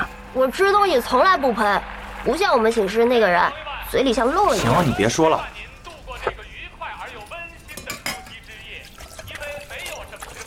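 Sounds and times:
speech: 0.4s - 5.6s
dishes and cutlery clinking as hotpot is served: 7.2s - 10.4s.

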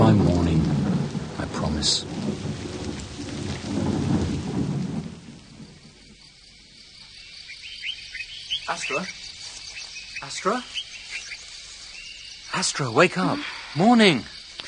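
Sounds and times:
deep rolling rumble of thunder: 0.0s - 6.9s
steady heavy rain: 0.0s - 14.6s
speech: 1.8s - 2.1s, 8.9s - 9.2s, 10.3s - 10.8s, 12.6s - 14.4s
faint high chirps: 7.0s - 14.6s.

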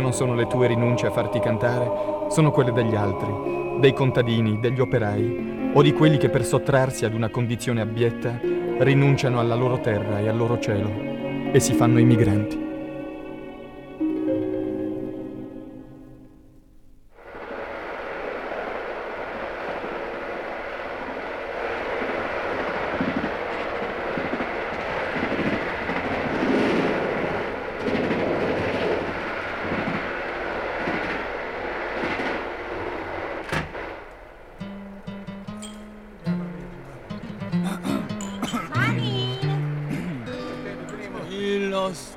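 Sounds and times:
speech: 0.0s - 12.6s
train leaving a station rumbling: 0.0s - 12.9s, 17.1s - 42.1s
music: 0.0s - 17.0s, 34.6s - 42.1s.

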